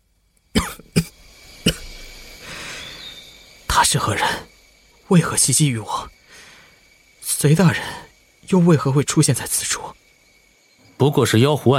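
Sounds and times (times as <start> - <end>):
faint hiss: 0.0 - 11.7
man with a hoarse voice coughing: 0.6 - 2.0
speech: 3.9 - 4.5, 5.1 - 6.1, 7.4 - 10.0, 11.0 - 11.7.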